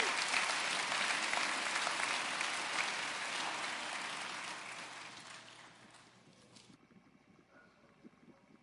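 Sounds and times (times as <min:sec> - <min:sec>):
large church audience applauding with hand claps: 0:00.0 - 0:06.2.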